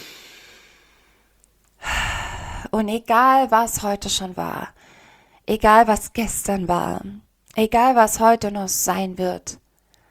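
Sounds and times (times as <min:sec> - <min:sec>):
sudden loud breath: 0:00.0 - 0:01.1, 0:01.8 - 0:02.7
person breathing in through the nose and out through the mouth: 0:00.0 - 0:01.2, 0:01.8 - 0:02.7, 0:04.8 - 0:05.4
speech: 0:02.8 - 0:09.6.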